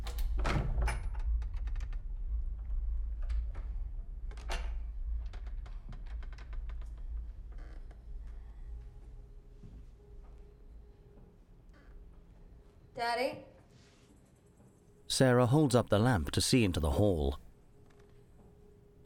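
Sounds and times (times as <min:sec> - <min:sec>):
bedroom door creaking open slowly: 0:00.0 - 0:08.8, 0:11.2 - 0:12.5
speech: 0:13.0 - 0:13.5, 0:15.2 - 0:17.4.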